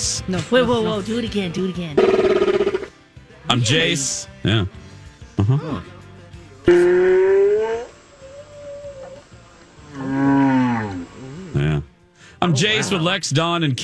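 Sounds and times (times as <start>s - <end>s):
speech: 0.2s - 2.5s, 3.5s - 4.8s, 5.4s - 6.0s, 6.7s - 7.2s, 12.4s - 13.8s
blue whales mating calls: 6.7s - 13.0s.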